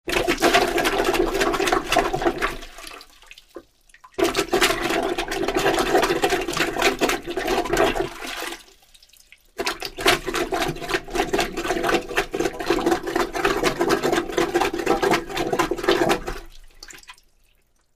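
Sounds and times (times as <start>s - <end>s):
toilet plunging: 0.1s - 2.8s, 4.2s - 8.6s, 9.6s - 16.5s.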